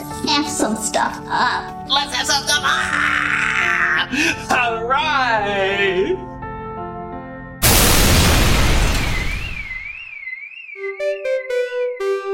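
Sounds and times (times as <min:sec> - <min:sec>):
speech: 0:00.4 - 0:06.3
loud explosion rumbling: 0:07.6 - 0:10.1
warbling siren-like tone: 0:08.8 - 0:11.8
pulsing electronic alarm beeps: 0:08.8 - 0:12.2.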